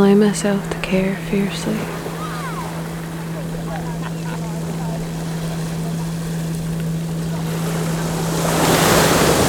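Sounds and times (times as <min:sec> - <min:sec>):
faint low hum: 0:00.0 - 0:09.4
tide waves washing over sand and pebbles: 0:00.0 - 0:09.4
speech: 0:00.1 - 0:02.0
laughter: 0:02.0 - 0:06.5.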